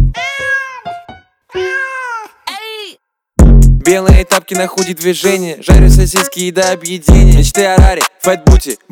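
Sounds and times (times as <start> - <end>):
cat meowing: 0.2 - 0.9, 1.5 - 2.4
speech: 3.9 - 8.9.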